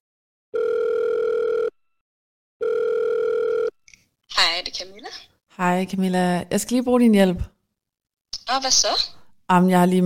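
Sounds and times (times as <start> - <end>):
outgoing phone call ringback tone: 0.6 - 1.8, 2.6 - 3.8
speech: 4.5 - 7.5, 8.5 - 10.0.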